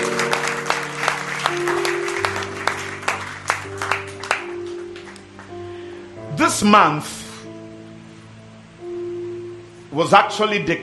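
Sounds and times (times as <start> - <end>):
audience applause: 0.0 - 5.7
steady low instrumental tones: 0.0 - 10.8
speech: 6.5 - 7.2, 10.0 - 10.8.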